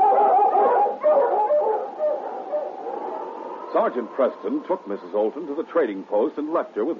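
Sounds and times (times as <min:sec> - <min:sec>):
pack of sled dogs barking, yipping and howling: 0:00.0 - 0:05.2
speech: 0:03.7 - 0:06.9.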